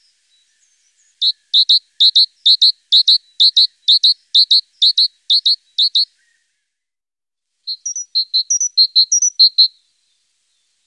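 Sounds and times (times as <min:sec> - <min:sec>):
speech: 0:01.3 - 0:06.2
great tit song recorded in Germany, Austria or Switzerland: 0:07.7 - 0:09.7.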